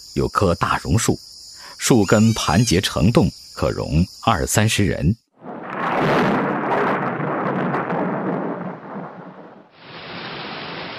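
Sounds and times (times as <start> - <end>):
speech: 0.2 - 5.2
long rolling rumble of thunder: 5.4 - 10.9
dense heavy rainfall: 6.0 - 10.9.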